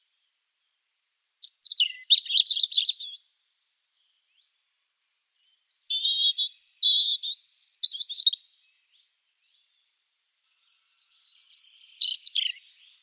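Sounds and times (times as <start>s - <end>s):
European robin Erithacus rubecula singing at a nest box: 0.0s - 4.7s, 5.3s - 13.0s.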